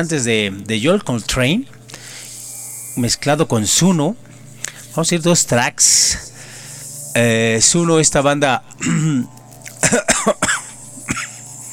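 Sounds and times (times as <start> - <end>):
speech: 0.0 - 1.8, 3.0 - 4.4, 5.0 - 6.4, 7.2 - 10.4
man with a bad cough coughing harshly: 8.8 - 9.2, 9.8 - 11.4.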